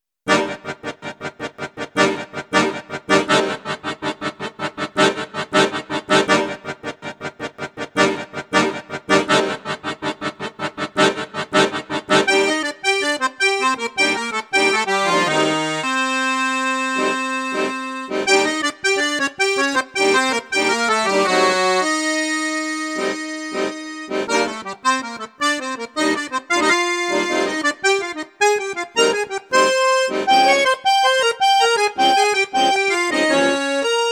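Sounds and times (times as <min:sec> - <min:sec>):
accordion on bassoon, flute and piccolo registers: 0:00.3 - 0:34.1.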